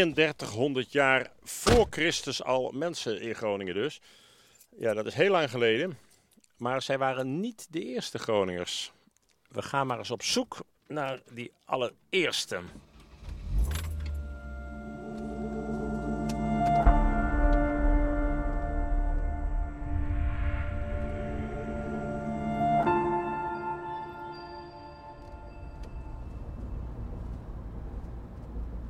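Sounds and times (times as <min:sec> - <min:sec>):
speech: 0:00.0 - 0:04.2, 0:04.8 - 0:06.0, 0:06.6 - 0:12.9
road rumble: 0:12.7 - 0:22.9, 0:24.7 - 0:28.8
car engine hum driving through the Groningen countryside: 0:12.7 - 0:23.3, 0:25.2 - 0:28.8.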